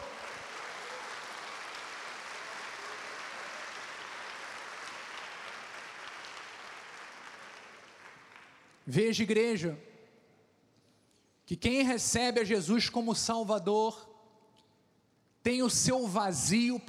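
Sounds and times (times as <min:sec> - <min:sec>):
church audience applauding: 0:00.0 - 0:08.8
speech: 0:08.9 - 0:09.9, 0:11.5 - 0:14.1, 0:15.4 - 0:16.8.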